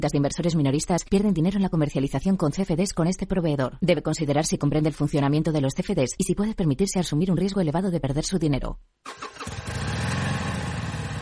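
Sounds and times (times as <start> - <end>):
speech: 0.0 - 9.8
motorcycle engine starting and idling: 9.1 - 11.2.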